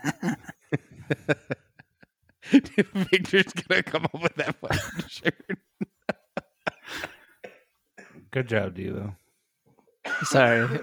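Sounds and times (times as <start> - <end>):
person coughing from a cold: 0.0 - 0.5, 4.7 - 5.1, 7.0 - 8.2
laughter: 0.0 - 7.4, 10.1 - 10.8
speech: 2.8 - 4.6, 8.4 - 9.2, 10.2 - 10.8.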